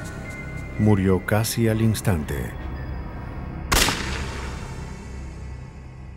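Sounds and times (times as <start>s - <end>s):
speech: 0.8s - 2.6s
.22-caliber gunshot fired outside a residence at night: 3.7s - 5.1s.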